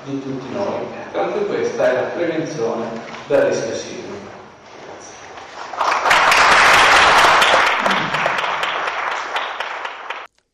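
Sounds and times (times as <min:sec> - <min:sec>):
speech: 0:00.0 - 0:04.2
conference audience applause: 0:05.4 - 0:10.3.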